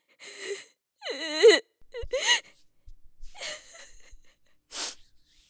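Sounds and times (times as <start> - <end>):
woman crying: 1.1 - 4.9
woman gasping breaths: 1.8 - 5.4.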